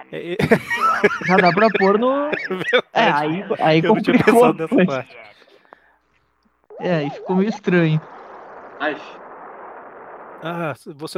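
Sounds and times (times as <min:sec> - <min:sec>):
speech: 0:00.1 - 0:05.3, 0:06.8 - 0:08.2, 0:08.8 - 0:09.2, 0:10.4 - 0:11.1
laughter: 0:00.1 - 0:05.6
explosion sound effect with ringing tail: 0:06.8 - 0:10.8.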